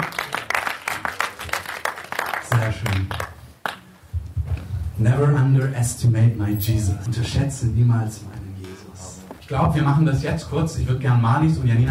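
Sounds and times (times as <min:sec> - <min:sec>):
audience applauding: 0:00.0 - 0:03.9
speech: 0:02.7 - 0:03.3, 0:05.0 - 0:08.4, 0:09.5 - 0:11.8.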